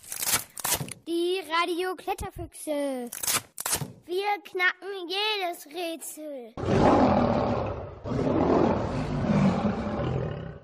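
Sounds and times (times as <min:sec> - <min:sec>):
speech: 0:01.5 - 0:03.4, 0:04.1 - 0:07.3
lion roaring: 0:06.6 - 0:10.6.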